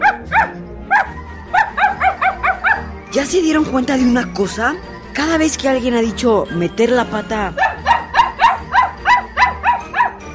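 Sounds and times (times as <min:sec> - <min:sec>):
small dog barking excitedly: 0:00.0 - 0:02.9, 0:07.6 - 0:10.2
speech: 0:03.1 - 0:07.6.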